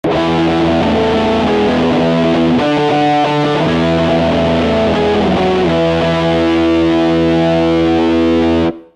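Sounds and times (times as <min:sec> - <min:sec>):
violin-like singing Stratocaster guitar: 0:00.1 - 0:08.7.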